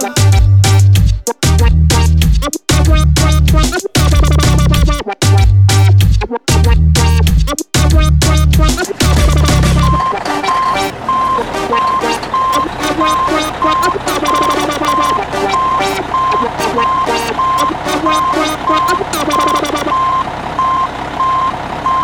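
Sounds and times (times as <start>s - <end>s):
speech: 0.0s - 0.2s
Swedish pop single with electronic reggaeton-style beat: 0.0s - 19.9s
high-pitched reversing beep: 3.2s - 5.0s, 7.9s - 22.0s.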